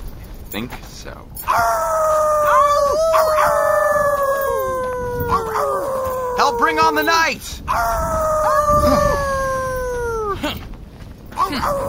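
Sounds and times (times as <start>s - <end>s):
speech: 0.5s - 2.2s, 6.4s - 9.2s, 11.5s - 11.8s
dog howling: 1.4s - 7.1s, 7.7s - 10.4s, 11.4s - 11.8s.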